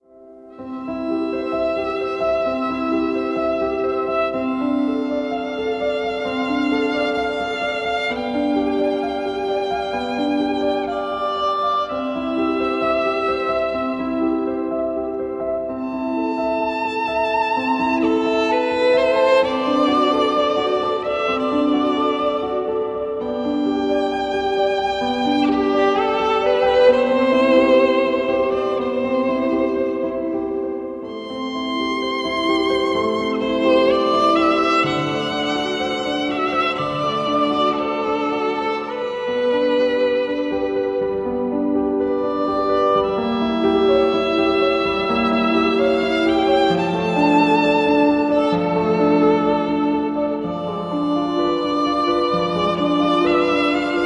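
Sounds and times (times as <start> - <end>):
pop violin music: 0.0 - 54.0.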